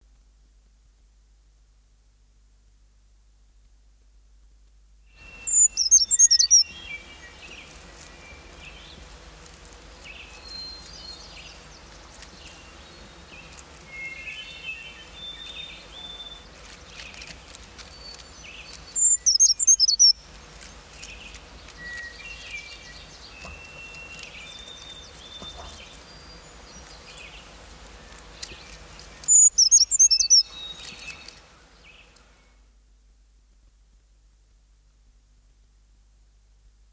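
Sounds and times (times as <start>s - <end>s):
brown creeper and songbirds singing: 5.2s - 9.2s, 10.0s - 32.6s.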